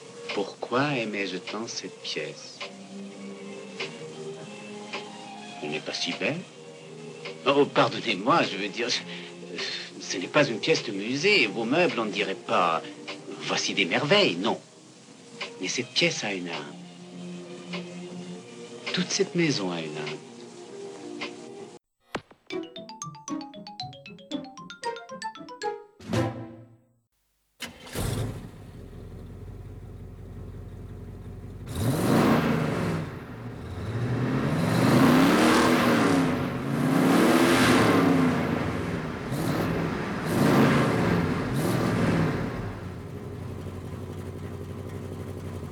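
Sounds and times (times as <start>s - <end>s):
speech: 0.4s - 2.6s, 5.7s - 6.6s, 7.4s - 9.4s, 10.1s - 14.7s, 15.6s - 16.8s, 19.0s - 20.3s
bright musical notes: 22.5s - 25.9s
car engine starting and revving loudly: 27.6s - 45.7s.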